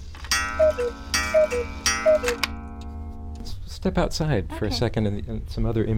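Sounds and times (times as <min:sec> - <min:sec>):
quiet hum: 0:00.0 - 0:05.9
grandfather cuckoo clock two-note cuckoo call: 0:00.2 - 0:03.4
speech: 0:00.8 - 0:02.6, 0:03.8 - 0:05.9.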